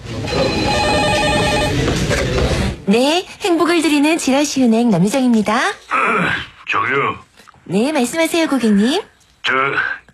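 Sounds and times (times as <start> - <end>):
telephone ringing at a bank office desk: 0.1 - 2.0
speech: 2.9 - 10.0.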